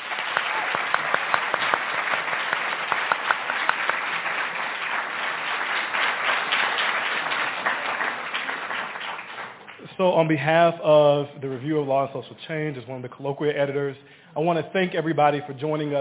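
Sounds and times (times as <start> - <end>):
roomful of people applauding for a panel: 0.0 - 10.1
speech: 10.0 - 16.0.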